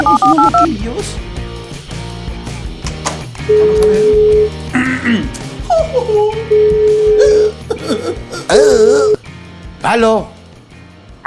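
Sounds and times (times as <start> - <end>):
telephone call being dialled: 0.0 - 0.7
busy rhythmic background: 0.0 - 11.2
speech: 9.8 - 10.4.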